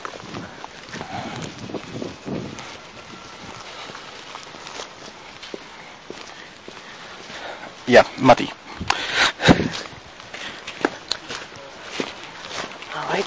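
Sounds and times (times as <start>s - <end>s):
footsteps walking across wet grass: 0.0s - 13.2s
low rustling noise: 0.0s - 13.2s
speech: 7.9s - 8.6s.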